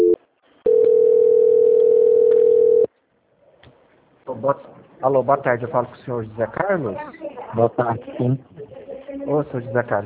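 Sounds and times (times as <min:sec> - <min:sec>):
telephone tone on a line while a call is being transferred: 0:00.0 - 0:02.9
speech: 0:04.4 - 0:08.6, 0:09.3 - 0:10.0.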